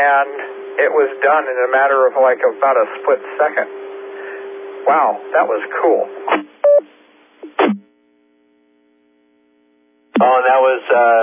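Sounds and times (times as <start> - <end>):
speech: 0.0 - 3.9, 4.9 - 6.5, 10.2 - 11.2
phone beeping during contact data transfer: 6.6 - 6.8.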